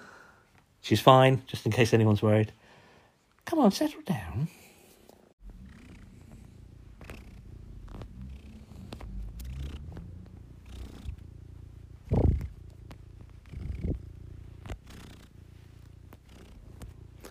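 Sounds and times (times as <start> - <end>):
speech: 0.9 - 2.6, 3.5 - 4.6
heavy-breathing cat purring while sitting on a person covered in a blanket: 5.4 - 17.2.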